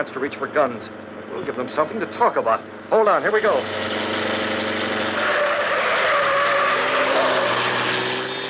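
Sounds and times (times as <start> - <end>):
speech: 0.0 - 4.3
car tires skidding: 2.7 - 8.4
car engine roaring past at speed: 3.3 - 8.4.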